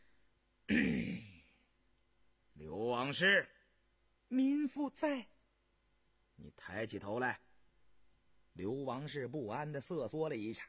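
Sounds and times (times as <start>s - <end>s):
man's light cough: 0.7s - 1.4s
speech: 3.1s - 3.6s, 4.3s - 5.3s, 6.4s - 7.5s, 8.6s - 10.6s.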